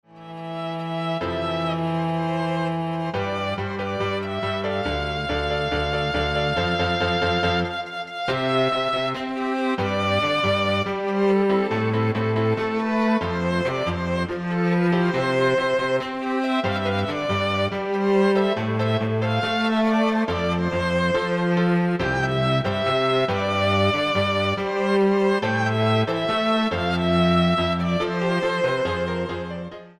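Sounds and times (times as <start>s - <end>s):
piano trio playing: 0.1s - 29.9s.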